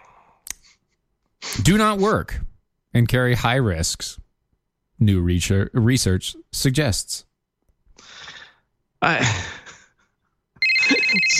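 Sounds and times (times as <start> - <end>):
speech: 1.6 - 4.2, 5.0 - 7.3, 9.0 - 9.6
telephone ringing with an incoming call: 10.6 - 11.3.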